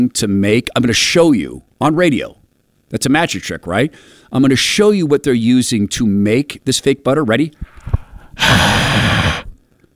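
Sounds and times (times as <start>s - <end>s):
speech: 0.0s - 9.2s
person exhaling breath: 7.6s - 9.6s.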